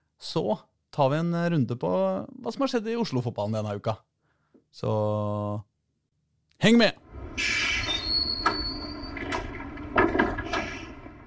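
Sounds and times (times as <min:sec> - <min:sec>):
speech: 0:00.3 - 0:04.1, 0:04.7 - 0:05.7, 0:06.6 - 0:07.6
tram rail car rumbling: 0:07.1 - 0:11.2
tram wheels squealing in a thin high whine at a tram stop: 0:07.2 - 0:11.2
sharp metallic clanks and thumps of a tram moving into a tram stop: 0:08.4 - 0:11.2.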